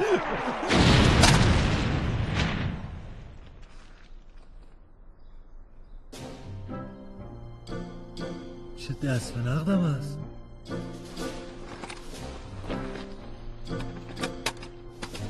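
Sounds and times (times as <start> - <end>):
cannon boom: 0.2 - 3.7
speech: 8.9 - 10.8.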